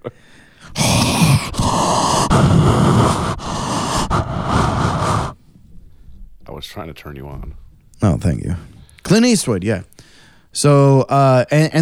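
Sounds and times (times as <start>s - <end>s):
person breathing heavily into a microphone after drinking scotch: 0.1s - 6.3s, 10.0s - 10.5s
speech: 6.8s - 11.8s.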